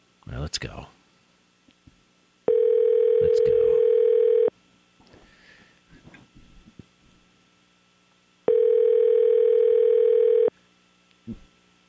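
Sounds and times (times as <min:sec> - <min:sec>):
speech: 0:00.3 - 0:01.0
outgoing phone call ringing tone to a cell phone: 0:02.5 - 0:04.5, 0:08.5 - 0:10.5.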